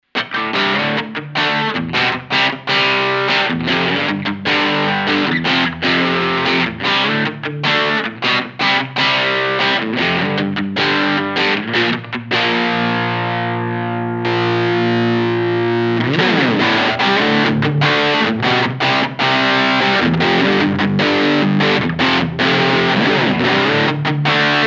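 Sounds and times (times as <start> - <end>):
crunchy electric guitar with bridge pickup: 0.0 - 24.6.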